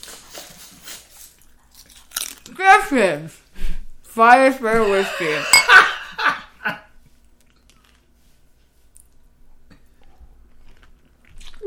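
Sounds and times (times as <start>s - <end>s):
person crunching chips: 0.9s - 2.5s, 7.4s - 8.1s, 10.0s - 11.6s
speech: 2.6s - 3.4s, 4.2s - 5.9s
laughter: 4.8s - 6.5s.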